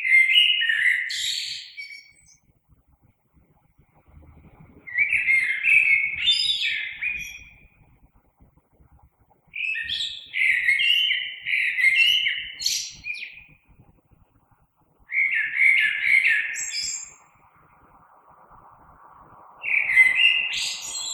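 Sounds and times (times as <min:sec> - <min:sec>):
common blackbird singing: 0:00.0 - 0:02.4, 0:04.9 - 0:07.6, 0:09.6 - 0:13.5, 0:15.1 - 0:17.2, 0:19.6 - 0:21.1
faint low rumble: 0:02.1 - 0:10.7, 0:12.5 - 0:21.1.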